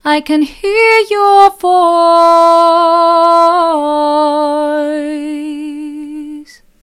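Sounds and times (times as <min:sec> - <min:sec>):
woman singing: 0:00.0 - 0:06.6.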